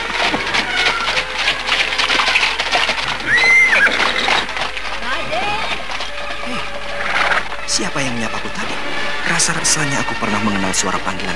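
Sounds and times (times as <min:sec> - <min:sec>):
horse pulling a cart whinnying: 0:00.2 - 0:07.6
speech: 0:07.9 - 0:11.3.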